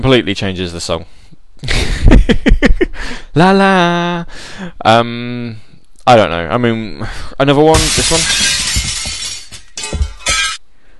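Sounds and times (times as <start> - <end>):
speech: 0.0 - 8.8
glass window shattering sound effect: 7.7 - 10.6.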